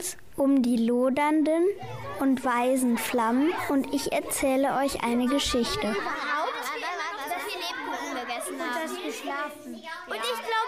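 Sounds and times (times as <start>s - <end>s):
speech: 0.0s - 6.4s
excited children chattering: 1.7s - 10.6s
children giggling: 1.8s - 2.3s, 3.1s - 9.3s.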